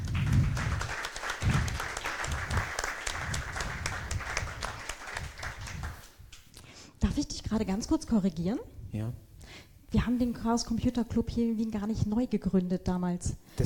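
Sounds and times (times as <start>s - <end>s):
audience applause: 0.0s - 6.1s
speech: 7.5s - 9.3s, 9.9s - 13.6s.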